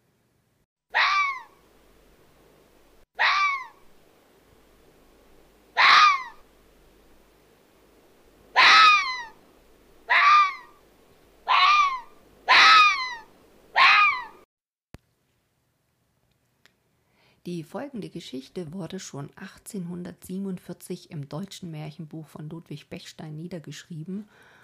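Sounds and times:
faint hum: 0.0s - 14.4s, 15.0s - 24.6s
fox barking in hoarse yelping calls: 0.9s - 1.5s, 3.2s - 3.8s, 5.8s - 6.4s, 8.5s - 9.4s, 10.1s - 10.8s, 11.4s - 14.4s
speech: 17.5s - 24.5s.

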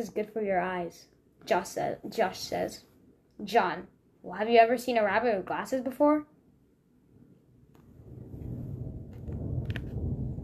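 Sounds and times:
speech: 0.0s - 6.3s
distant thunder rumbling during a thunderstorm: 7.9s - 10.4s.

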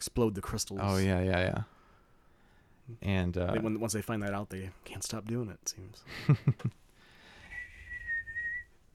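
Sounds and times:
speech: 0.2s - 1.8s, 2.9s - 6.8s
person attempting to whistle: 7.5s - 8.7s.

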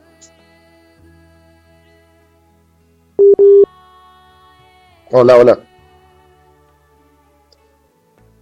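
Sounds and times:
telephone busy tone after a call drops: 3.2s - 3.7s
speech: 5.1s - 5.7s.

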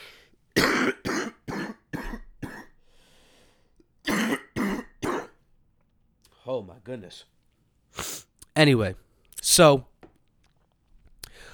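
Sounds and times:
harsh coughing fit: 0.6s - 2.8s, 4.0s - 5.4s
throat clearing: 0.6s - 2.8s, 4.1s - 5.4s
speech: 6.6s - 7.4s, 8.0s - 9.9s.

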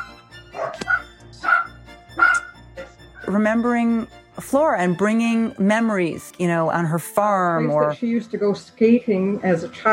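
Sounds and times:
two dachshunds barking: 0.0s - 3.0s
speech: 3.3s - 9.9s.

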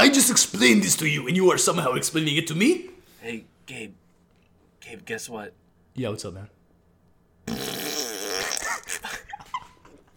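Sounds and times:
speech: 0.1s - 4.0s, 4.9s - 6.6s
loud raspy fart: 7.4s - 9.0s.

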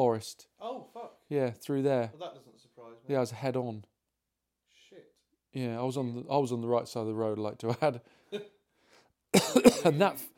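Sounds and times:
speech: 0.0s - 0.5s, 1.3s - 3.9s, 5.5s - 8.6s, 9.3s - 10.3s
person coughing harshly: 9.3s - 10.2s.

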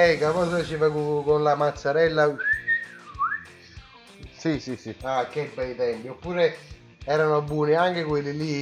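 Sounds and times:
speech: 0.0s - 2.6s, 4.4s - 8.6s
shrill reedy whistle from a whistle lollipop: 2.3s - 3.6s.

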